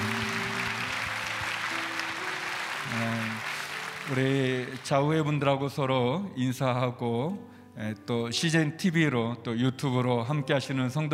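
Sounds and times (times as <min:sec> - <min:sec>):
large church audience applause: 0:00.0 - 0:05.1
speech: 0:04.1 - 0:11.1.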